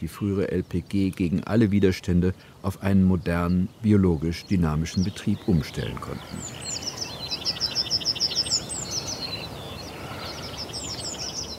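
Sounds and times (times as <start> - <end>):
speech: 0.0 - 6.7
birds chirping in the Brodowiner Karpaten near Brodowin Germany: 0.0 - 11.5.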